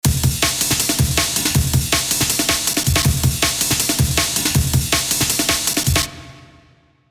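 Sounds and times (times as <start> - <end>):
drum break: 0.0 - 6.6.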